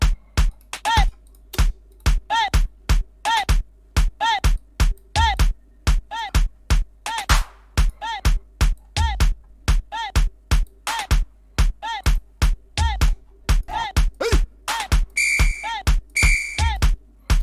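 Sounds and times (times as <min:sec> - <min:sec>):
looping electronic music sample of punchy hits: 0:00.0 - 0:17.4
sustained high whistle tones in a music sample: 0:15.2 - 0:16.8.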